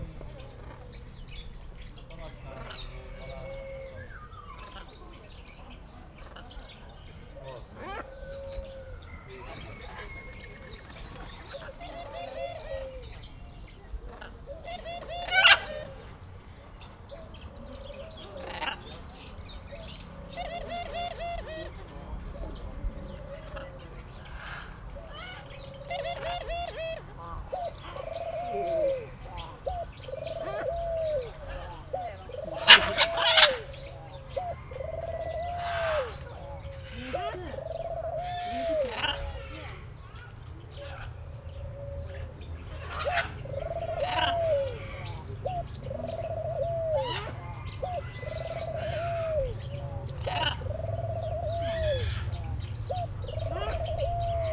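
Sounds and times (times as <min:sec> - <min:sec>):
laughing dove calling in a zoo: 0:00.0 - 0:54.5.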